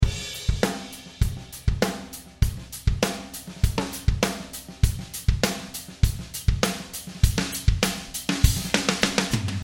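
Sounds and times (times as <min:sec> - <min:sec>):
mixed drums: 0:00.0 - 0:09.6.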